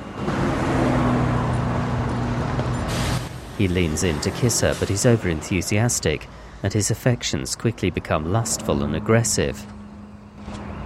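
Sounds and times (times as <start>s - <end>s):
busy road traffic with engines and tires: 0.0s - 10.8s
speech: 3.6s - 9.8s.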